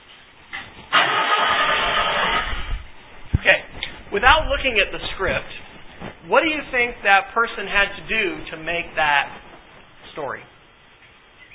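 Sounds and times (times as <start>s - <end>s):
Ford Galaxy car engine starting with a key: 0.9s - 2.7s
speech: 4.2s - 5.6s, 6.3s - 9.4s, 10.2s - 10.5s.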